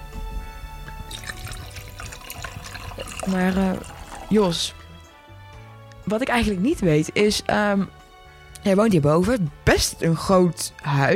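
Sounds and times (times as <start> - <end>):
red wine pouring from an opened bottle: 0.9 - 5.2
speech: 3.2 - 4.8, 6.1 - 8.0, 8.6 - 11.1.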